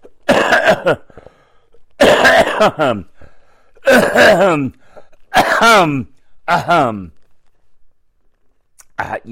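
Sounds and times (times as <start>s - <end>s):
person coughing harshly: 0.0s - 1.2s, 2.0s - 3.2s, 3.8s - 7.1s
speech: 0.7s - 1.2s, 2.0s - 3.1s, 3.8s - 4.8s, 5.6s - 7.2s, 9.0s - 9.2s.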